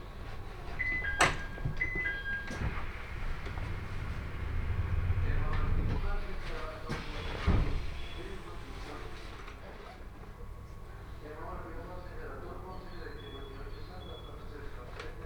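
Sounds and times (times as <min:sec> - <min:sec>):
Tōhoku Main Line local train idling at Fukushima station platform: 0:00.0 - 0:09.7
clunks: 0:00.8 - 0:08.7
voices: 0:03.0 - 0:15.2.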